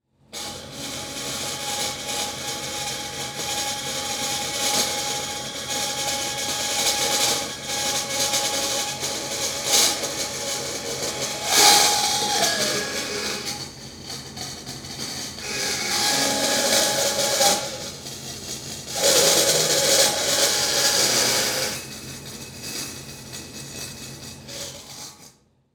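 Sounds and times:
industry fan: 0.4s - 23.9s
saw cutting metal: 4.4s - 22.2s.

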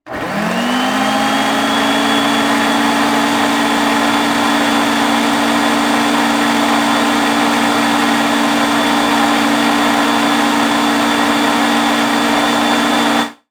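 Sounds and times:
household blender turned on at high speed: 0.0s - 13.4s.

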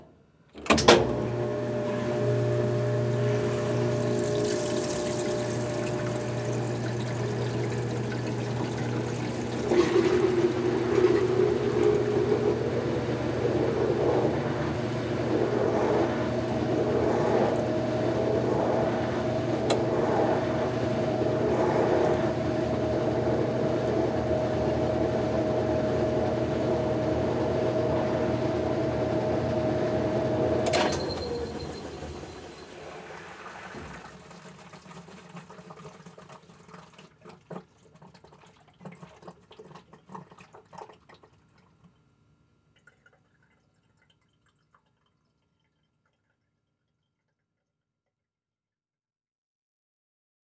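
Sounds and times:
household washing machine turning on, spinning and shutting off: 0.6s - 41.1s.

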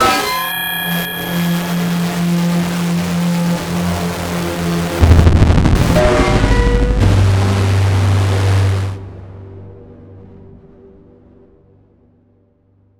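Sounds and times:
distortion flutter whine feedback stutter: 0.0s - 9.5s.

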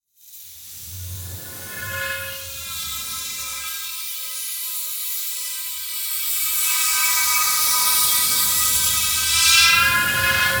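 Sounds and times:
creepy wind through a pipe: 0.5s - 4.2s, 6.5s - 10.5s.

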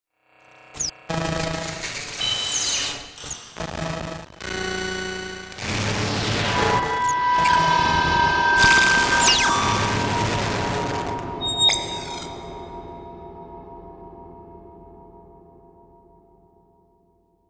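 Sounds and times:
distorted electrical beeps: 0.3s - 12.8s
computer noise: 0.7s - 12.6s.

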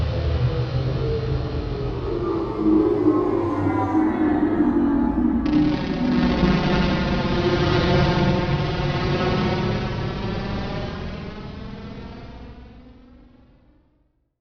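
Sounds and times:
empty phasey electronic whoosh production element: 0.2s - 11.4s.

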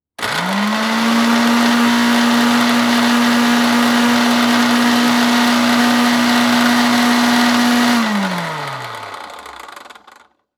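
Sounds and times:
household blender running at low speed: 0.2s - 10.4s.

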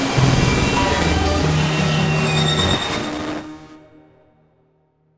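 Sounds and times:
layered distorted musical tones as a production element: 0.1s - 3.5s.

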